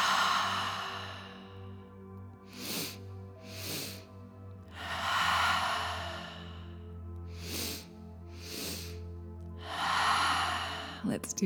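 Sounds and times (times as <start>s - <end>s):
long slow airy breath out through the mouth: 0.0s - 1.8s, 2.4s - 11.1s
sharp sniffs in through the nose: 2.6s - 4.0s, 7.4s - 9.0s
speech: 11.1s - 11.4s.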